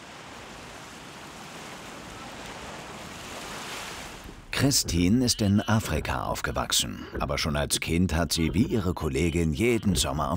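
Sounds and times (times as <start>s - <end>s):
sea waves on open water: 0.0s - 5.0s
wind on open water: 0.0s - 10.3s
speech: 4.6s - 10.3s.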